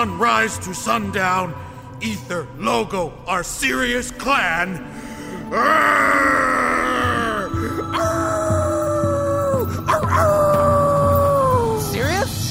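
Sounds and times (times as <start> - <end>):
speech: 0.0 - 6.5
dog howling: 5.5 - 12.3.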